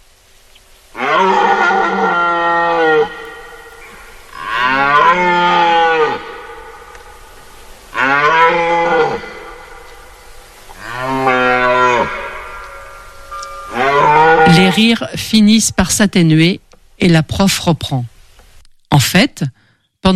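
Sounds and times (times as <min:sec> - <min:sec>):
red deer stag bellowing during the rut: 0:00.9 - 0:14.9
speech: 0:14.8 - 0:18.1, 0:18.9 - 0:20.1.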